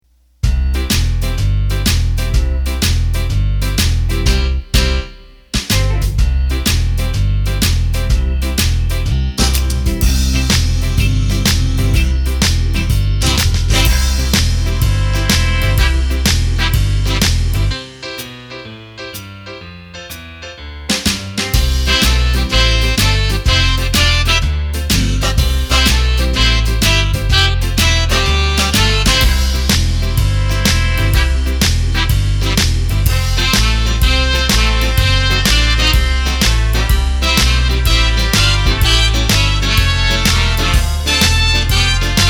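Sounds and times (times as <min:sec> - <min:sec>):
simple rock backing music on an arranger keyboard: 0:00.4 - 0:42.2.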